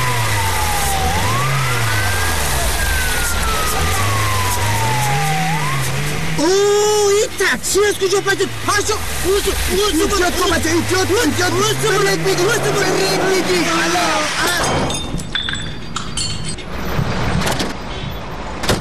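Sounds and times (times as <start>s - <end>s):
traffic rumbling: 0.0s - 18.7s
raised voices: 2.0s - 14.9s
speech: 7.5s - 15.0s
car headlight glass being smashed: 14.4s - 16.7s
glass shards tinkling and clattering: 14.4s - 16.7s.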